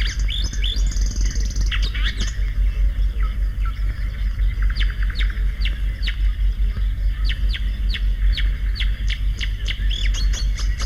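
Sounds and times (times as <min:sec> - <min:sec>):
Marsh Warbler giving sharp chirps and high descending flicks: 0:00.0 - 0:10.8
steady low rumble: 0:00.0 - 0:10.8.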